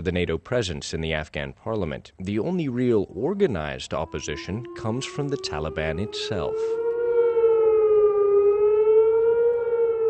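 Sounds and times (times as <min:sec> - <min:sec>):
speech: 0:00.0 - 0:06.8
air raid siren at Kandahar Air Base warning of incoming rockets: 0:03.6 - 0:10.0.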